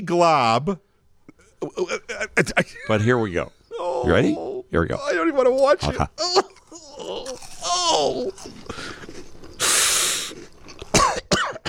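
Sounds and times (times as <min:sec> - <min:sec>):
speech: 0:00.0 - 0:00.9, 0:01.6 - 0:08.9
person groaning and gagging: 0:01.4 - 0:03.0, 0:03.7 - 0:04.7, 0:05.9 - 0:08.9
person coughing and hacking: 0:10.9 - 0:11.6.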